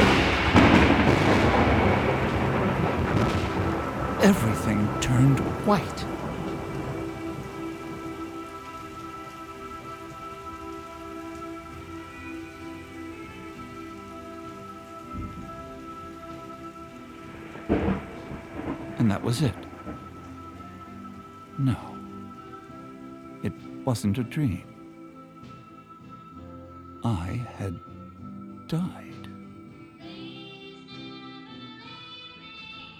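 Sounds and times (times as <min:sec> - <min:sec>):
thunder crack from a lightning strike: 0:00.0 - 0:23.7
rain pattering on a surface during a thunderstorm: 0:00.0 - 0:30.0
speech: 0:04.2 - 0:06.2, 0:19.2 - 0:19.6, 0:23.9 - 0:24.8, 0:27.0 - 0:27.9, 0:28.7 - 0:29.1.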